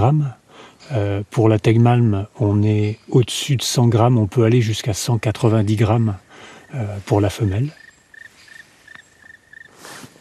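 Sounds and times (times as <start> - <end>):
speech: 0.0 - 7.8
black woodpecker calling: 5.5 - 9.8.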